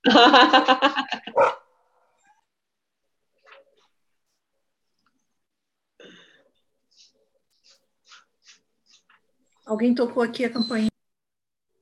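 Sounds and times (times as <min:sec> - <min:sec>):
speech: 0:00.0 - 0:01.0, 0:09.8 - 0:10.9
laughter: 0:00.0 - 0:01.4
big dog barking: 0:01.3 - 0:01.7.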